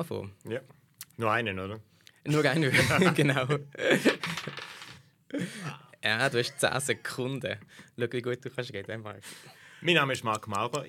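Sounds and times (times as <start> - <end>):
speech: 0.0 - 4.6, 5.3 - 10.8
laughter: 2.4 - 4.4
die tumbling across a hard tabletop: 4.2 - 5.0.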